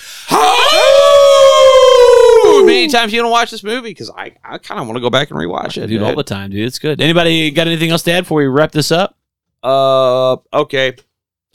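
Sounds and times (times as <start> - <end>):
person howling like a wolf: 0.3 - 2.9
speech: 2.8 - 11.5.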